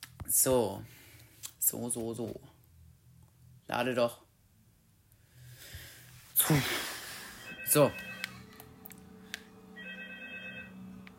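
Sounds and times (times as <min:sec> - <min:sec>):
low steady hum: 0:00.0 - 0:11.1
speech: 0:00.4 - 0:01.0, 0:01.7 - 0:02.6, 0:03.7 - 0:04.2, 0:06.4 - 0:06.9, 0:07.7 - 0:08.1
faint buzzy warbling electronic telephone ring from a video game: 0:07.4 - 0:08.6, 0:09.7 - 0:11.1.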